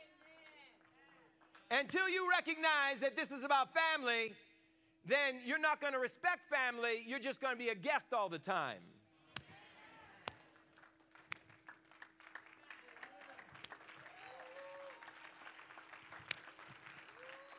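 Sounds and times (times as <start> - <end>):
audience clapping along: 0.0 - 1.9, 10.3 - 17.5
speech: 1.7 - 9.0.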